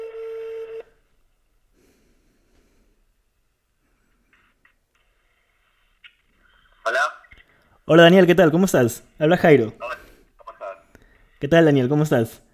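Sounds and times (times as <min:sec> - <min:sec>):
loud steady telephone tone: 0:00.0 - 0:01.0
speech: 0:06.9 - 0:07.2, 0:07.9 - 0:10.0, 0:11.4 - 0:12.5.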